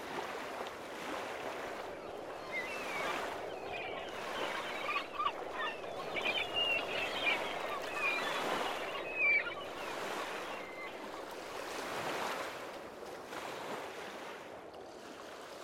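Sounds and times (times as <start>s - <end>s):
sea waves at a beach: 0.0s - 15.6s
wind at a beach: 0.0s - 15.6s
seagulls squawking and fluttering at a beach: 1.6s - 11.8s.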